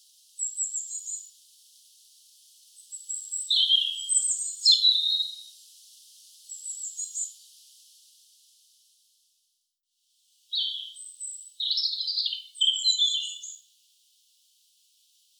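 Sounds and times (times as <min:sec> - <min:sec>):
European robin Erithacus rubecula singing: 0:03.2 - 0:05.5, 0:10.5 - 0:13.6.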